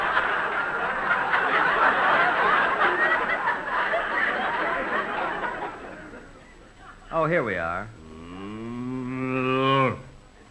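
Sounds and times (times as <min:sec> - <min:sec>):
laughter: 0:00.0 - 0:07.2
speech: 0:07.3 - 0:08.0
cow mooing: 0:08.0 - 0:10.2.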